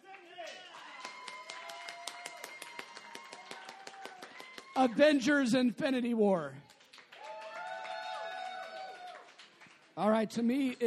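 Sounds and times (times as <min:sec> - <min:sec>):
audience clapping to cast a vote for a film: 0:00.0 - 0:05.4, 0:06.4 - 0:10.8
excited voices and cheering: 0:00.0 - 0:05.5, 0:07.2 - 0:09.2
speech: 0:04.8 - 0:06.7, 0:10.0 - 0:10.8.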